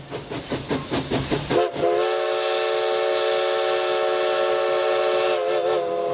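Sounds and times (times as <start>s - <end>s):
historic steam locomotive chuffing: 0.0s - 6.1s
historic steam locomotive whistle blowing: 1.6s - 6.1s.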